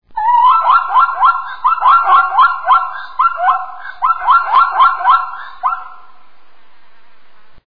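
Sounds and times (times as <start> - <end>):
Equus quagga zebra: 0.2 - 6.2.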